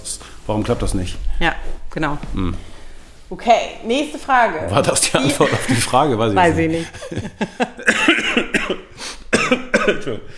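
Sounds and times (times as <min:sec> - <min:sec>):
speech: 0:00.5 - 0:02.7, 0:03.3 - 0:08.9, 0:09.9 - 0:10.3
laughter: 0:04.8 - 0:08.5
harsh coughs: 0:07.7 - 0:10.3.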